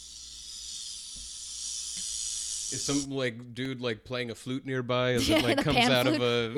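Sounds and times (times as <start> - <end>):
snake's tail rattle making a steady dry buzz: 0.0 - 3.0
speech: 2.7 - 6.5
laughter: 5.2 - 6.5.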